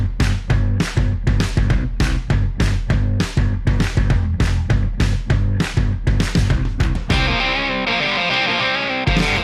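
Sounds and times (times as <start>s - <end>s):
loud driving instrumental podcast intro music with distorted punchy rhythm: 0.0s - 9.4s.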